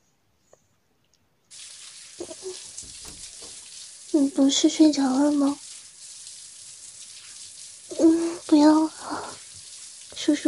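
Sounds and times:
shower water running: 1.5s - 10.4s
soft splashes and knocks under shower water: 1.8s - 4.3s
speech: 4.2s - 5.6s.

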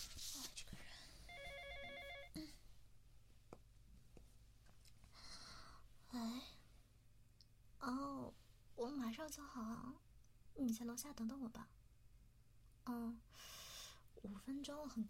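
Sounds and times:
soft rustling: 0.0s - 5.2s
phone ringing with electronic warble: 1.3s - 2.4s
speech: 6.1s - 6.5s, 7.8s - 10.0s, 10.6s - 11.8s, 12.9s - 13.6s, 14.2s - 15.0s.

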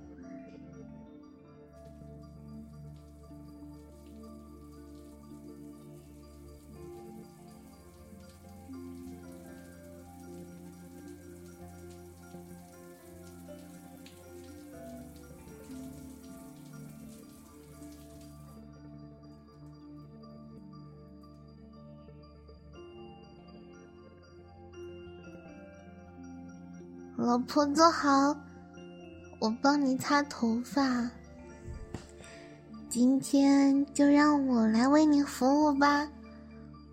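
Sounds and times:
steady tonal background: 0.0s - 36.9s
water spray running while bathing: 3.2s - 18.5s
speech: 27.2s - 28.4s, 29.4s - 31.2s, 33.0s - 36.2s.

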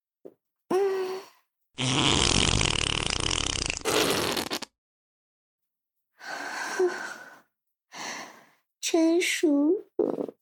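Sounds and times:
loud drawn-out fart: 1.8s - 4.8s
speech: 9.0s - 10.3s.

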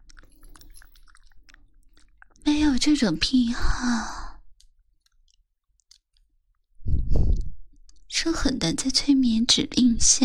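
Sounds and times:
wet slurping and licking: 0.0s - 3.0s, 4.5s - 6.7s
speech: 2.7s - 4.2s, 8.3s - 10.2s.

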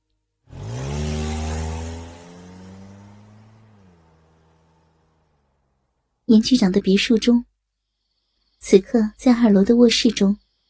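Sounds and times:
car engine starting and pulling away from a wooded spot: 0.5s - 6.2s
speech: 6.3s - 7.5s, 8.6s - 10.4s.

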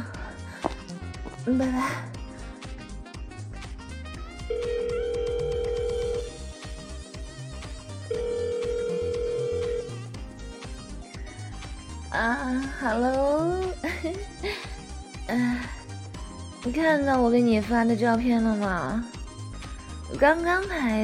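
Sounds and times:
busy music: 0.0s - 21.0s
speech: 1.5s - 2.2s, 12.2s - 14.6s, 16.7s - 19.1s, 20.1s - 21.0s
phone ringback tone on an outgoing call: 4.5s - 6.4s, 8.1s - 10.1s.

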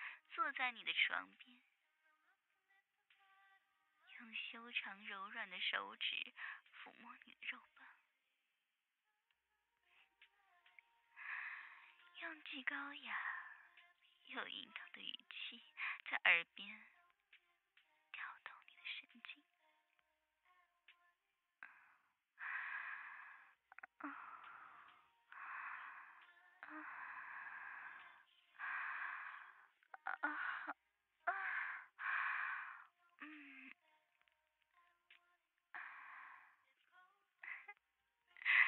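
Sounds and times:
speech: 0.4s - 1.7s, 4.2s - 8.0s, 12.2s - 13.4s, 14.3s - 16.9s
soft breathing of a teacher at the listener's ear: 11.1s - 12.1s, 21.6s - 33.8s, 35.7s - 37.8s.

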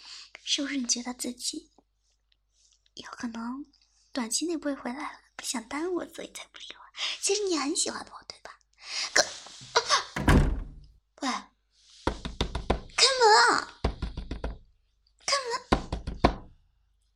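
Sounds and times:
speech: 0.5s - 1.8s, 3.0s - 9.3s, 11.2s - 11.5s
rapid knocking on a door: 10.2s - 10.8s, 12.1s - 13.0s, 13.8s - 14.7s, 15.7s - 16.6s
door shutting with a thud: 10.2s - 10.9s.

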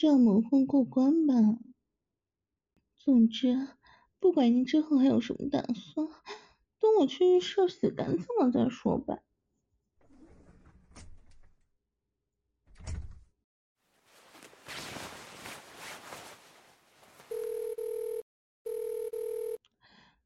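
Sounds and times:
speech: 0.0s - 1.7s, 3.0s - 9.3s
rustling noise: 13.8s - 17.7s
phone ringing with electronic tones: 17.3s - 19.6s.

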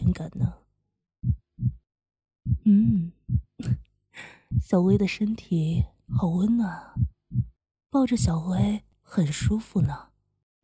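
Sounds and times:
heartbeat thumping heard at the ear: 0.0s - 0.6s, 1.2s - 1.8s, 2.4s - 3.8s, 4.4s - 10.0s
speech: 0.1s - 0.6s, 2.7s - 3.8s, 4.6s - 7.0s, 7.9s - 10.6s
person humming: 2.5s - 3.8s.

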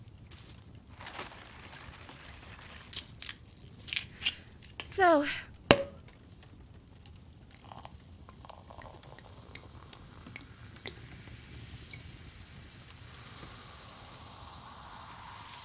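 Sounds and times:
champagne being poured and fizzing: 3.8s - 6.0s, 7.6s - 15.6s
speech: 5.0s - 5.5s
sharp clink: 5.6s - 6.0s.

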